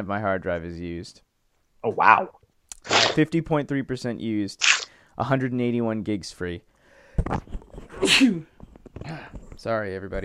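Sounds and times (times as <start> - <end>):
speech: 0.0 - 10.2
person mumbling quietly: 1.8 - 3.2
sneeze: 2.8 - 3.2, 4.6 - 4.9, 7.9 - 8.4.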